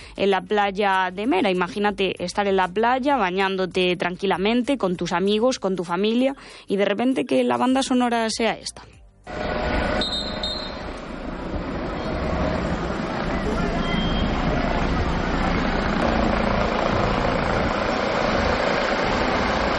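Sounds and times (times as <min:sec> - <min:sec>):
speech: 0:00.2 - 0:10.1
helicopter landing on a beach: 0:09.3 - 0:19.7.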